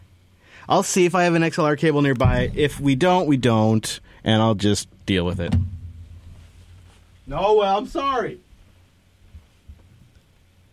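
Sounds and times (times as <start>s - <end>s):
faint steady white-noise hiss: 0.0s - 10.7s
speech: 0.6s - 5.7s, 7.3s - 8.4s
soft low thumps: 2.2s - 7.4s.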